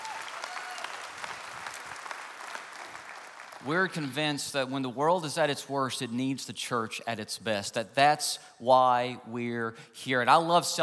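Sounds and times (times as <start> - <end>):
sizable audience applauding: 0.0 - 3.7
speech: 3.6 - 10.8.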